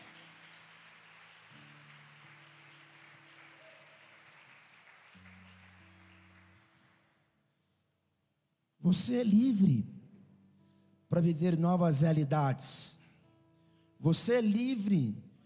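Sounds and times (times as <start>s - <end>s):
large crowd applauding: 0.0s - 7.2s
speech: 8.8s - 9.9s, 11.2s - 13.0s, 14.0s - 15.2s.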